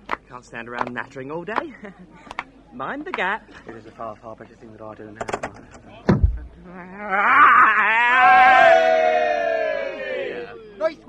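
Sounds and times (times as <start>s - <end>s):
speech: 0.4s - 5.8s, 6.6s - 8.9s
sharp knock or thump: 5.3s - 6.5s.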